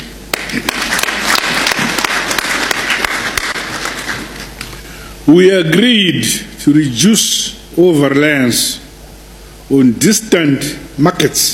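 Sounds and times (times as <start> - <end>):
audience applause: 0.3 - 4.5
speech: 5.3 - 8.8, 9.7 - 11.5.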